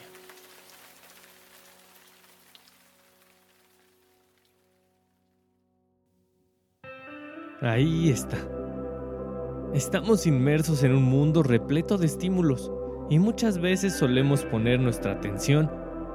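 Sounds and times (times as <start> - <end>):
rain pattering on a surface: 0.0 - 5.0
speech: 7.6 - 8.6, 9.7 - 15.8.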